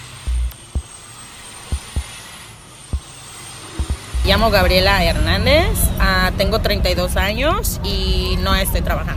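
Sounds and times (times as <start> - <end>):
thin high whine: 0.0 - 5.7
low steady street traffic rumble: 0.0 - 9.1
heavy thuds: 0.3 - 0.9, 1.7 - 2.1, 3.8 - 4.7
speech: 4.3 - 9.1.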